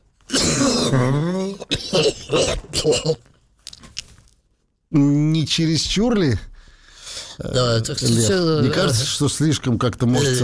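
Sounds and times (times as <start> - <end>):
person imitating a deep guttural cough: 0.3 - 3.3
speech: 0.9 - 1.4, 2.0 - 3.3, 4.9 - 6.5, 7.4 - 10.4.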